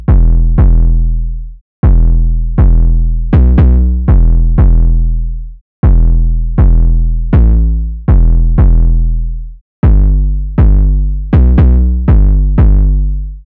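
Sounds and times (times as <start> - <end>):
808 drum machine loop in E minor: 0.1 - 0.9, 1.9 - 4.9, 5.9 - 7.5, 8.1 - 8.9, 9.9 - 13.0.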